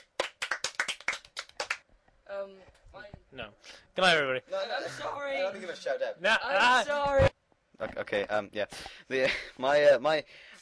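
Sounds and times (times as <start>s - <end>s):
hands clapping: 0.0s - 1.9s
speech: 2.4s - 10.6s.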